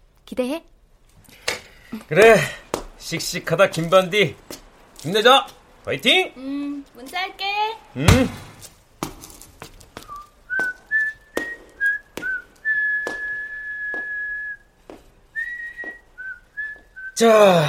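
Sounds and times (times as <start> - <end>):
speech: 0.3 - 0.8, 1.9 - 8.4, 17.2 - 17.6
steady beat of sharp knocking thuds: 8.0 - 9.2
person whistling a bright wavering melody: 10.0 - 14.7, 15.4 - 17.2.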